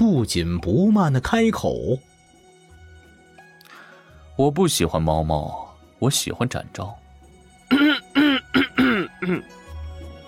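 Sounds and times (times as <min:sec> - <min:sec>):
speech: 0:00.2 - 0:02.1, 0:04.4 - 0:07.0, 0:09.2 - 0:09.6
voice actor coughing and clearing throat: 0:07.7 - 0:09.6.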